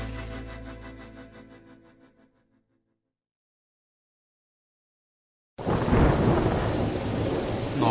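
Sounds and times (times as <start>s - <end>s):
loud thunderclap cracking and rumbling: 5.6s - 7.8s
steady heavy rain pouring down: 5.6s - 7.8s.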